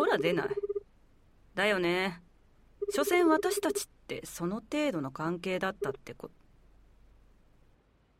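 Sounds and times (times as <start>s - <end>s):
speech: 0.1s - 0.6s, 1.5s - 2.2s, 2.9s - 6.4s
phone keypad beeps: 2.8s - 3.9s, 5.7s - 6.3s.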